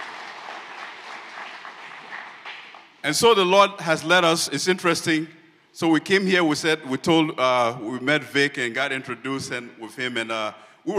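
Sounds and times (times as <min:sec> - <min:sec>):
congregation applauding at a religious gathering: 0:00.0 - 0:03.0
speech: 0:03.0 - 0:10.9.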